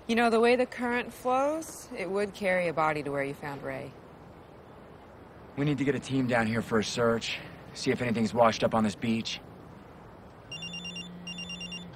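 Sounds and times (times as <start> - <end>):
speech: 0.1 - 4.0, 5.6 - 9.5
telephone ringing with electronic warbling trill: 10.5 - 11.9.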